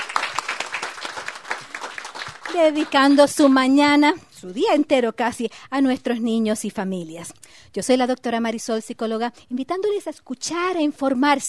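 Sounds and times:
live conference audience applause: 0.0 - 3.2
speech: 2.5 - 11.4.

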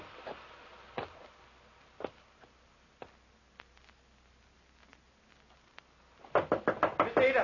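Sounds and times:
knocking on a door: 6.3 - 7.4.

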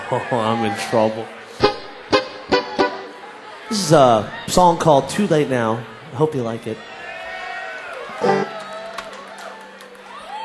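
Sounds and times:
murmur of voices: 0.0 - 4.6, 6.8 - 10.4
scattered crowd cheering and whooping: 0.0 - 10.4
speech: 0.1 - 1.4, 3.7 - 6.9.

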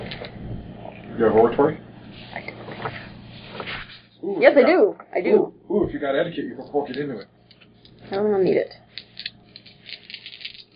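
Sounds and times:
speech: 1.2 - 2.5, 4.2 - 7.3, 8.1 - 8.8
six dice clattering and tumbling across a hard surface: 8.9 - 10.7.

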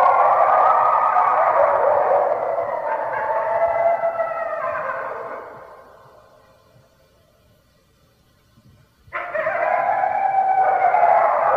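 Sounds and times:
red wolf howling: 0.0 - 5.9, 9.2 - 11.5.

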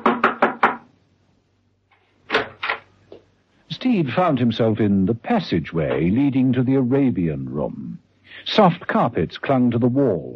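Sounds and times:
knocking on a door: 0.0 - 0.9
speech: 3.8 - 10.3.

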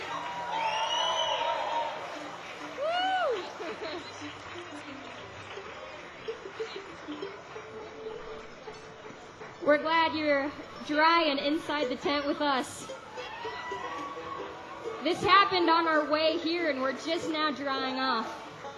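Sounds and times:
audience whooping: 0.0 - 4.3, 12.8 - 15.6
crowd applauding and cheering: 0.0 - 18.7
loud rising whistles from the crowd: 0.2 - 1.9
laughter: 2.0 - 7.6
speech: 9.7 - 13.0, 15.0 - 18.4.

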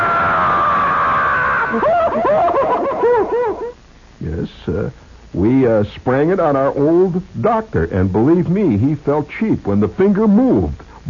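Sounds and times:
woman screaming: 0.0 - 2.3
laughter: 1.5 - 3.8
speech: 4.4 - 11.0.

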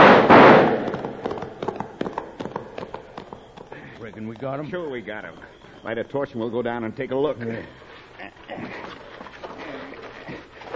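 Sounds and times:
loud blast: 0.0 - 1.2
gunfire volley from an ambush on riders on horseback: 0.0 - 3.0
speech: 4.2 - 7.9.

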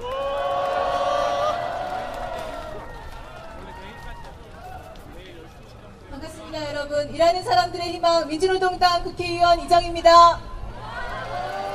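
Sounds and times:
large crowd applauding and cheering at a rally: 0.0 - 5.1, 10.8 - 11.7
speech: 7.1 - 10.5.

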